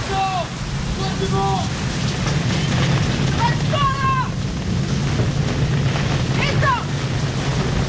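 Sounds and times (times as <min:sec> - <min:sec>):
faint shouting voices: 0:00.0 - 0:01.8, 0:03.3 - 0:04.4
deep rumble: 0:00.0 - 0:07.8
heavy wind of a storm at sea: 0:00.0 - 0:07.8
storm waves washing over a ship's deck: 0:00.0 - 0:07.8.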